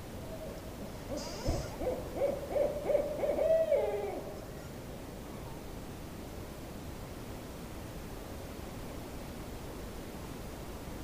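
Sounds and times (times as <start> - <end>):
owl giving a string of short hoots: 0.3 - 4.7
brief high hiss: 1.1 - 1.8.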